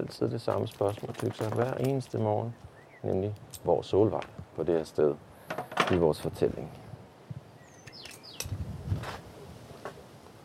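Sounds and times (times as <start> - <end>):
speech: 0.0 - 6.8
soft outdoor rustling: 0.0 - 10.4
female blackbird giving high chirps and whistled notes: 2.3 - 3.2, 7.4 - 8.6.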